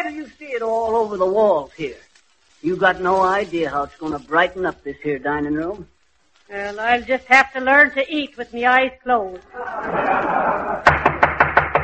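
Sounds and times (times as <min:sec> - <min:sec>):
speech: 0:00.0 - 0:11.0
laughter: 0:09.5 - 0:11.5
knocking at a door: 0:10.9 - 0:11.8.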